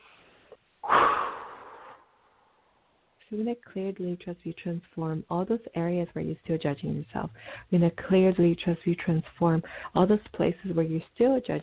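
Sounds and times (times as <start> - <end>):
deep breath drawn in and exhaled: 0.0 - 2.7, 7.4 - 7.7, 9.6 - 9.9
speech: 3.3 - 11.6.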